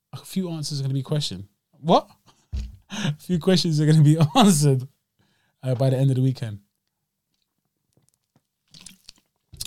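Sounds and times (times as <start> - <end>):
speech: 0.2 - 2.2, 3.0 - 4.9, 5.6 - 6.6
slurping and swallowing fizzy sparkling water: 8.7 - 9.6.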